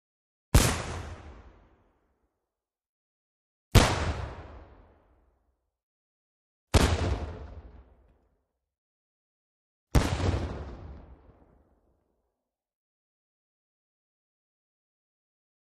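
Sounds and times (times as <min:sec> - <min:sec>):
single medium cannon shot: 0:00.6 - 0:01.5, 0:03.8 - 0:04.9, 0:06.7 - 0:07.9, 0:10.0 - 0:11.3.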